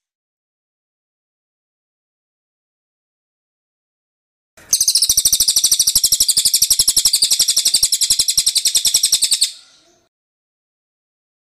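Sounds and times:
bird trilling rapidly with bright high-pitched chirps: 0:04.6 - 0:10.0.

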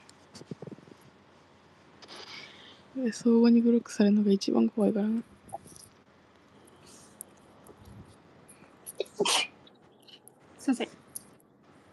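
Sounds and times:
speech: 0:03.0 - 0:05.3
sneeze: 0:09.1 - 0:09.6.

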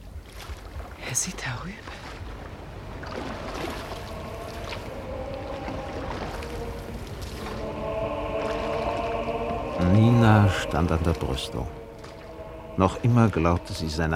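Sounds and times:
water splashing as people climb into a boat: 0:00.0 - 0:14.1
speech: 0:01.1 - 0:02.1, 0:09.9 - 0:11.8, 0:12.8 - 0:14.1
sustained tonal sound: 0:03.4 - 0:14.1.

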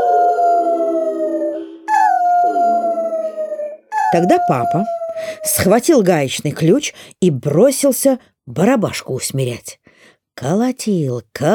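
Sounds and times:
dog howling: 0:00.0 - 0:05.7
speech: 0:04.1 - 0:11.5.

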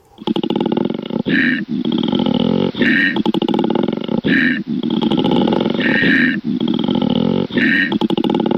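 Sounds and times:
koala bellowing: 0:00.0 - 0:08.5.

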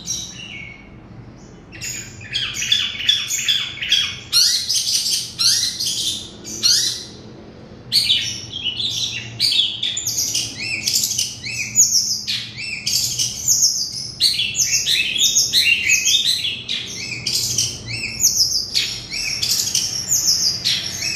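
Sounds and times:
Oriental magpie-robin varied song: 0:00.0 - 0:07.3, 0:07.9 - 0:21.1.

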